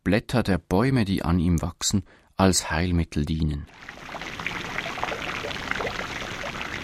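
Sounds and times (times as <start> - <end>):
speech: 0.1 - 4.6
fountain water cascading from basin to basin: 3.7 - 6.8.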